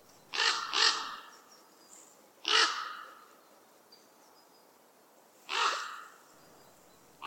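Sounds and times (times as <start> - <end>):
raven deep guttural croaking: 0.3 - 1.3, 2.4 - 3.2, 5.5 - 6.2.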